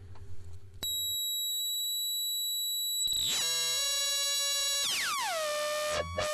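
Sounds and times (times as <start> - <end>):
homemade circuit board synthesizer high electronic tones: 0.9 - 6.3
homemade synthesizer layered buzzing tones sliding downward in pitch: 2.4 - 6.3
homemade circuit board synthesizer crackling clicks: 3.1 - 6.3.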